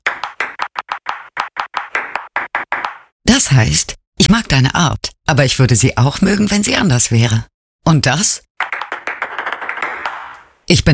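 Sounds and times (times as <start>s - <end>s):
table tennis ball bouncing tapping Morse code: 0.0s - 3.1s, 8.6s - 10.6s
speech: 3.4s - 8.5s, 10.7s - 10.9s.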